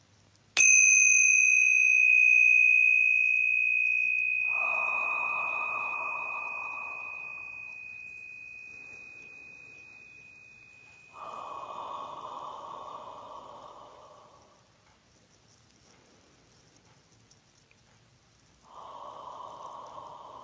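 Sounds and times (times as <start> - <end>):
tingsha bells struck once ringing: 0.6 - 14.6
long deep breath: 3.8 - 14.9, 18.6 - 20.4.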